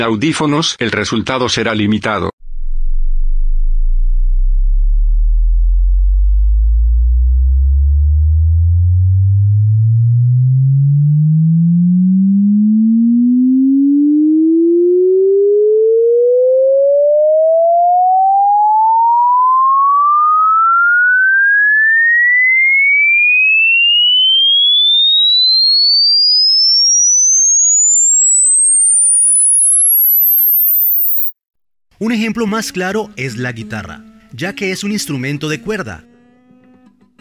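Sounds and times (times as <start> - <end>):
speech: 0.0 - 2.3, 32.0 - 36.1
pure sine tone sweeping upward from low hum to high whistle: 2.4 - 31.4.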